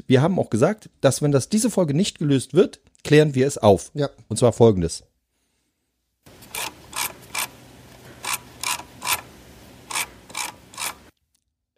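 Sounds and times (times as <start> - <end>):
speech: 0.0 - 5.1
computer mouse scroll wheel turning with ratcheting clicks: 6.3 - 11.1.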